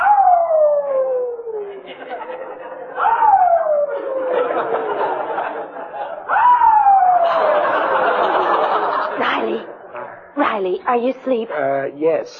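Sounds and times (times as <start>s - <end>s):
new puppy howling in a garage: 0.0s - 2.0s, 3.0s - 5.1s, 6.3s - 7.6s
laughter: 1.5s - 10.2s
speech: 10.9s - 12.3s.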